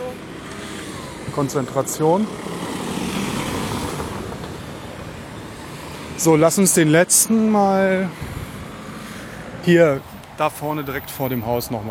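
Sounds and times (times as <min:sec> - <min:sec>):
car engine and tire noise passing by: 0:00.0 - 0:11.4
speech: 0:01.3 - 0:02.6, 0:06.2 - 0:08.4, 0:09.6 - 0:11.8.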